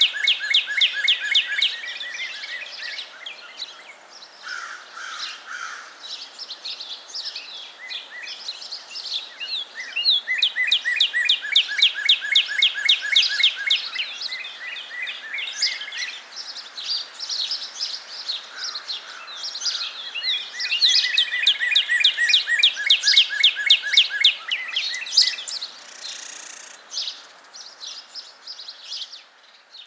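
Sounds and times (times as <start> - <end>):
northern cardinal singing repeated downslurred notes: 0.0 - 3.8, 9.5 - 16.1, 19.8 - 27.3.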